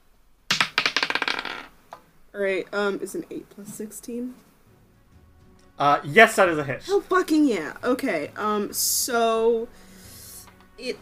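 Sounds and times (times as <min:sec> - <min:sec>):
die dropped clattering on a hard surface: 0:00.5 - 0:01.7
speech: 0:02.3 - 0:04.5, 0:05.8 - 0:09.9, 0:10.8 - 0:11.0.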